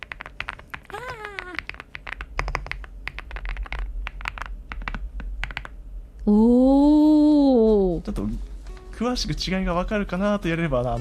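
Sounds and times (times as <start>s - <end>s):
typing on a Rainy home computer keyboard: 0.0s - 5.8s
speech: 6.3s - 6.8s, 8.1s - 10.9s.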